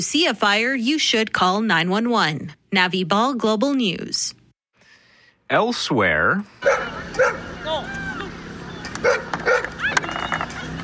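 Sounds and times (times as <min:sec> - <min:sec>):
speech: 0:00.0 - 0:04.4, 0:05.5 - 0:08.1, 0:09.0 - 0:10.0
dogs barking and yipping at a dog show: 0:06.6 - 0:10.8.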